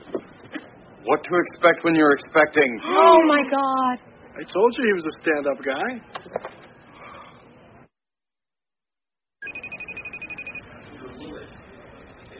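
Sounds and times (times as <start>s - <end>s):
steady noise: 0.0s - 7.9s, 9.4s - 12.3s
speech: 1.0s - 6.5s
trilling ringtone of an unanswered phone call: 9.4s - 10.7s.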